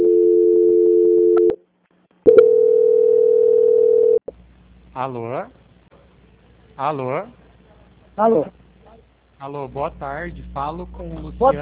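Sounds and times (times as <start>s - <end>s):
telephone transfer tone on a bank call while on hold: 0.0s - 1.6s, 2.3s - 4.2s
speech: 5.0s - 5.6s, 6.8s - 7.4s, 8.2s - 8.6s, 9.4s - 11.6s.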